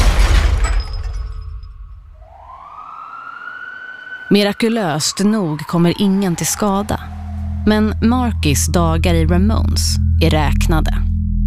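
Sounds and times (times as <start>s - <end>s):
car crashing through shop window with glass shattering: 0.0s - 2.2s
speech: 4.3s - 11.0s.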